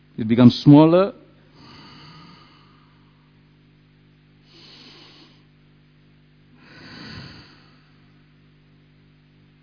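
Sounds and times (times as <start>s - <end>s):
speech: 0.2s - 1.2s
slow deep breathing in and out: 1.5s - 3.5s, 4.4s - 5.6s, 6.5s - 8.3s.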